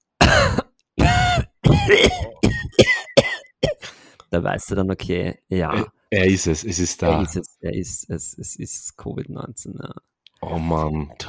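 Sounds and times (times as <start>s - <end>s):
deliberate exaggerated coughs: 0.2s - 4.0s
throat-clearing bursts: 0.2s - 4.0s
speech: 1.9s - 2.9s, 4.3s - 11.2s.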